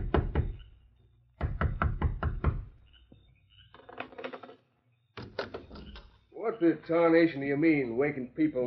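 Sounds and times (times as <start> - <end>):
knocking on a wooden door: 0.0 - 0.6, 1.4 - 2.7
speech: 6.6 - 8.6.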